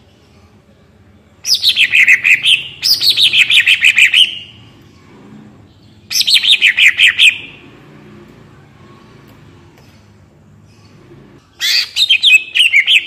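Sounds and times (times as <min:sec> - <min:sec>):
greater green leafbird song: 0:01.4 - 0:07.8, 0:09.8 - 0:13.0.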